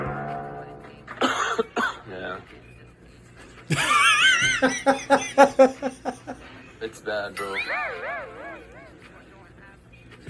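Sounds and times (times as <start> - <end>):
harsh coughs: 1.2 - 2.1
speech: 3.7 - 4.0, 4.6 - 6.0
loud rhythmic laughter from voices: 3.7 - 6.5.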